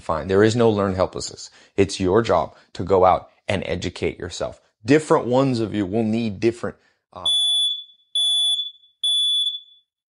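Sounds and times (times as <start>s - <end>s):
speech: 0.0s - 7.4s
house fire alarm beeping: 7.2s - 9.9s.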